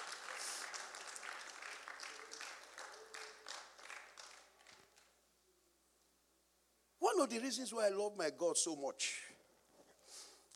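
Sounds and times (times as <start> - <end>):
audience applauding: 0.0 - 5.1
speech: 7.2 - 9.4.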